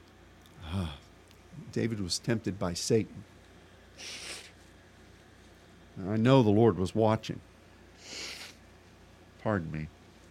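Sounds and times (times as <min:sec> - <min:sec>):
speech: 0:01.8 - 0:03.3, 0:04.0 - 0:04.2, 0:06.0 - 0:07.5, 0:09.4 - 0:10.0
person blowing their nose: 0:04.0 - 0:04.6, 0:08.0 - 0:08.6.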